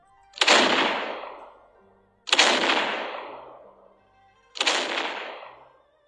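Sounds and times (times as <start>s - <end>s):
naval cannons of an old fleet of warships firing at sea: 0.4s - 1.7s, 2.3s - 3.9s, 4.6s - 5.7s.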